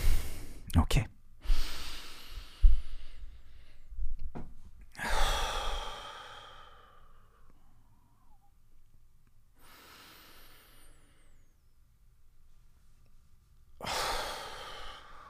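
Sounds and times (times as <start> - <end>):
deep breathing in and out: 0.0 - 0.7, 1.4 - 4.2, 4.9 - 8.6, 9.6 - 11.7, 13.8 - 15.2
speech: 0.7 - 1.2.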